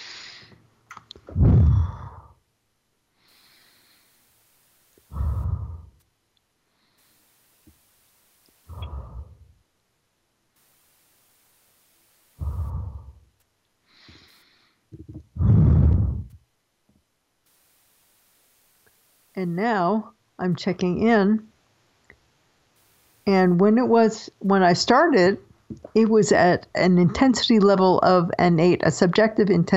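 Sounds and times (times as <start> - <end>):
deep slow breathing: 1.3 - 2.4, 3.1 - 4.4, 5.0 - 6.0, 8.6 - 9.6, 12.3 - 16.4
speech: 19.4 - 21.5, 23.3 - 29.7.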